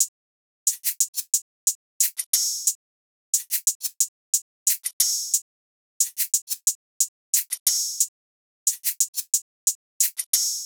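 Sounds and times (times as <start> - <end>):
shaker and hi-hat loop: 0.7 - 2.8, 3.4 - 5.4, 6.0 - 8.1, 8.7 - 10.6.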